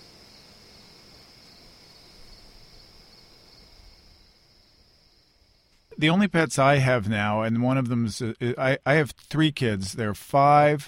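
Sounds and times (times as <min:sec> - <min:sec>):
crickets trilling at night: 0:00.0 - 0:06.8
speech: 0:06.0 - 0:10.8.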